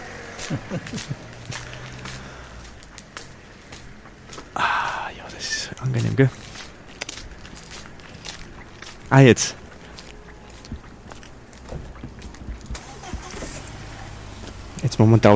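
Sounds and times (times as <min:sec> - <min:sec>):
cars passing outside the studio: 0:00.0 - 0:15.3
laughter: 0:00.3 - 0:02.4
speech: 0:00.4 - 0:01.7, 0:05.4 - 0:06.4, 0:09.1 - 0:09.6, 0:15.0 - 0:15.3
footsteps on sandstone floor: 0:00.4 - 0:12.8.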